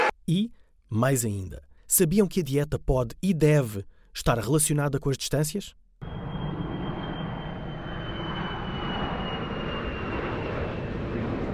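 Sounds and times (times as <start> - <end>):
speech: 0.3 - 5.8
airplane engine roaring overhead: 6.0 - 11.5.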